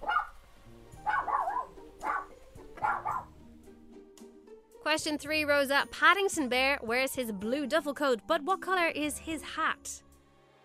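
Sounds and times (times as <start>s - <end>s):
dog giving short yappy barks: 0.0s - 0.4s, 1.0s - 3.4s
speech: 4.9s - 10.0s.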